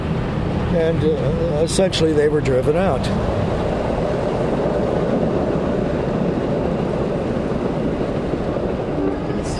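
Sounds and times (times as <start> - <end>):
train running by an airport runway: 0.0 - 9.5
speech: 0.7 - 3.7.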